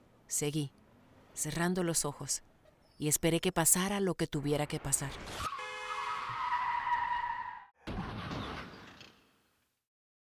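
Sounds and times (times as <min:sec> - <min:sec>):
speech: 0:00.3 - 0:00.8, 0:01.4 - 0:05.5
harsh noisy car crash: 0:05.2 - 0:09.5
car tires squealing in a long high-pitched skid: 0:05.4 - 0:08.7.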